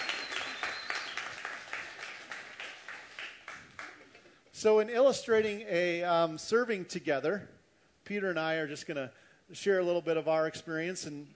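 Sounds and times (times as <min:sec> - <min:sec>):
audience clapping: 0:00.0 - 0:04.4
speech: 0:04.6 - 0:11.3.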